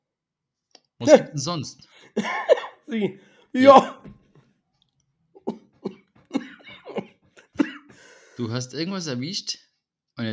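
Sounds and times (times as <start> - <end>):
speech: 1.0 - 4.2, 8.4 - 9.6, 10.2 - 10.3
person coughing in a coughing fit: 2.2 - 2.8, 5.4 - 8.1
person gasping between coughs: 3.2 - 3.8, 6.3 - 8.4
laughter: 5.4 - 7.6.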